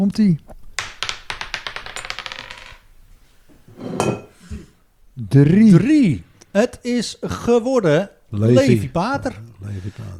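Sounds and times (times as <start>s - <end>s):
speech: 0.0s - 0.5s, 5.3s - 10.1s
die thrown and clattering across a hard surface: 0.5s - 3.0s.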